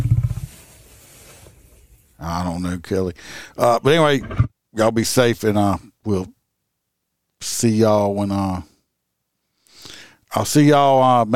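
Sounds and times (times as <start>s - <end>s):
speech: 2.2s - 6.4s, 7.4s - 8.7s, 10.3s - 11.3s
lion roaring in deep rhythmic grunting pulses: 4.1s - 4.5s.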